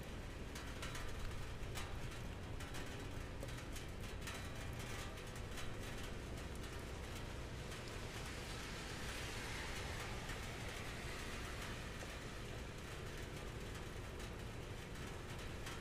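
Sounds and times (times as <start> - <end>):
rain in a city neighborhood: 0.0 - 15.7
low traffic rumble on a wet city street: 5.4 - 15.2.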